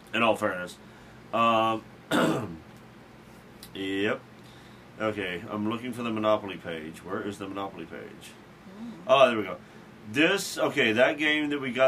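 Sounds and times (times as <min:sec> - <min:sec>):
speech: 0:00.1 - 0:02.6, 0:03.8 - 0:04.3, 0:05.0 - 0:11.8
harsh breathy cough: 0:02.1 - 0:02.6
voiced hum-like throat clearing: 0:02.1 - 0:02.6.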